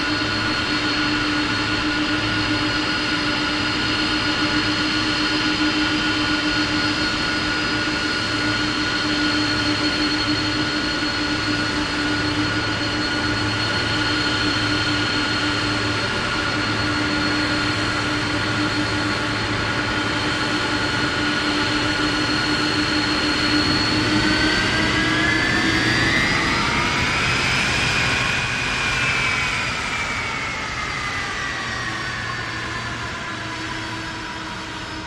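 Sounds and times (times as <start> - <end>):
Boeing 747 DreamLifter jet engines whining while landing and taxiing: 0.0 - 35.0.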